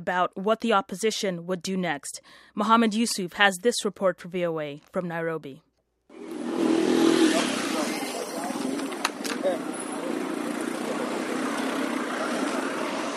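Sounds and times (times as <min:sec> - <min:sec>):
speech: 0:00.0 - 0:06.2
city traffic rumble: 0:06.1 - 0:13.1
engines droning: 0:06.1 - 0:13.1.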